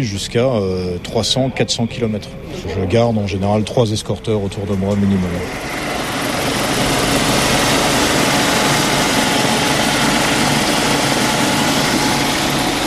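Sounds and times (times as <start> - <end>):
speech: 0.0 - 6.0
NH90 Caiman helicopter engine and rotors in flight: 0.0 - 12.8.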